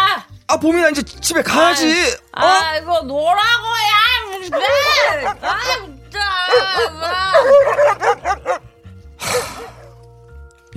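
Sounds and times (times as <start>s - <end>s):
speech: 0.5s - 8.6s
drunk woman under a truck imitating a dog with howls and barks: 4.4s - 7.8s.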